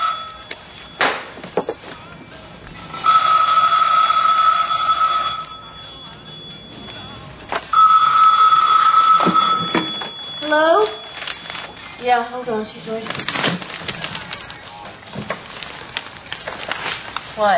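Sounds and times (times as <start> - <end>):
telephone bell ringing in electronic bursts: 0.0 - 1.0, 2.9 - 12.0
speech: 17.4 - 17.5.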